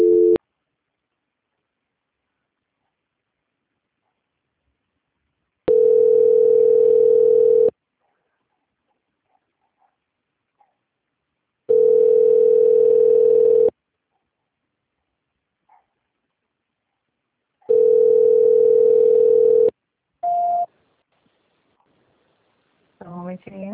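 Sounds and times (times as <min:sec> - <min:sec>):
telephone ringback tone during a call transfer to an extension: 0:00.0 - 0:00.4, 0:05.7 - 0:07.7, 0:11.7 - 0:13.7, 0:17.7 - 0:20.7.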